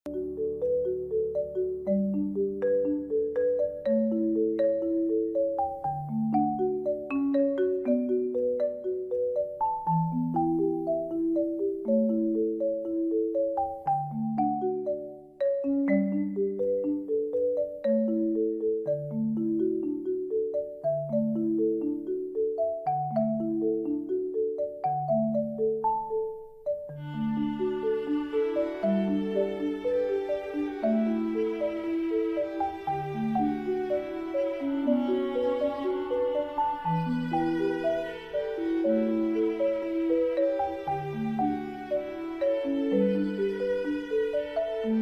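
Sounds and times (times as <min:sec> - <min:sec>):
uplifting calm marimba: 0:00.1 - 0:45.0
uplifting calm violin: 0:26.9 - 0:45.0.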